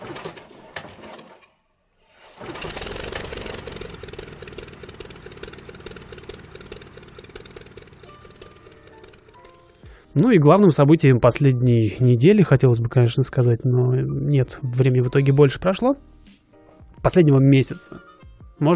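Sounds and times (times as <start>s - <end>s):
propeller aircraft engine starting up: 2.1s - 10.1s
speech: 10.2s - 16.1s, 17.0s - 18.7s.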